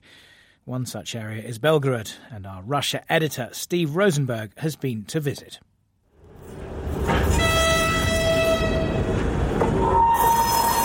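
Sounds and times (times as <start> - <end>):
speech: 0.7 - 5.7
goods train rolling past on the rails: 6.2 - 10.8
goods train wheels squealing metallically: 6.4 - 10.8.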